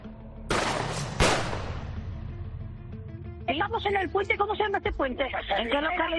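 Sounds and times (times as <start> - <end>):
gunshots echoing on a footbridge over the Bernesga river: 0.5 - 2.0
speech: 3.6 - 6.1.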